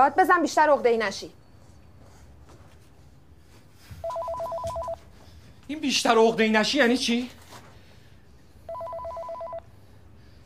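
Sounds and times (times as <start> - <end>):
speech: 0.0 - 1.4, 5.7 - 7.4
low hum: 0.0 - 10.4
telephone ringing with rapidly alternating electronic tones: 4.0 - 5.0, 8.6 - 9.7.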